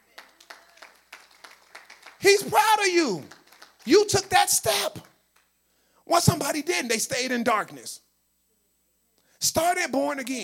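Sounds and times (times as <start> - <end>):
group clapping hands in a steady rhythm: 0.0 - 5.5
speech: 2.2 - 3.3, 3.9 - 5.1, 6.1 - 8.0, 9.4 - 10.4.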